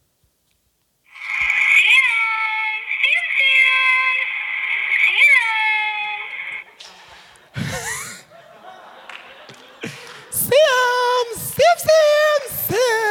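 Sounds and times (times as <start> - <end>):
woman's recorded voice from a robotic cat feeder calling to a cat: 1.6 - 6.5, 10.4 - 13.0
laughter: 6.2 - 13.0.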